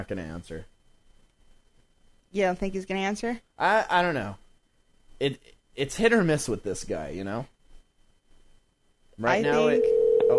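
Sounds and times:
speech: 0:00.0 - 0:00.8, 0:02.3 - 0:04.4, 0:05.2 - 0:07.5, 0:09.2 - 0:10.3
steady electronic outgoing phone call ringing tone: 0:09.4 - 0:10.3.

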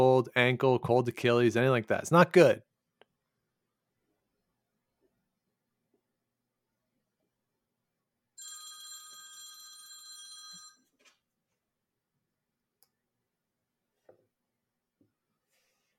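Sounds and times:
speech: 0:00.0 - 0:02.7
telephone ringing with a harsh buzzing electronic bell tone: 0:08.4 - 0:11.0.

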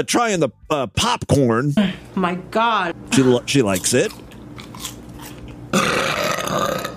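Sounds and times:
speech: 0:00.0 - 0:04.2
loud raspy burp: 0:05.7 - 0:06.9.

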